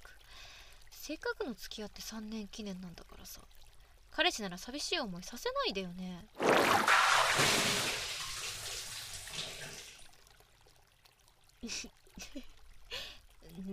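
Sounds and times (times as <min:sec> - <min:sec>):
speech: 0:01.1 - 0:03.6, 0:04.2 - 0:08.0, 0:11.7 - 0:12.5
hot bath water overflowing: 0:06.3 - 0:13.7.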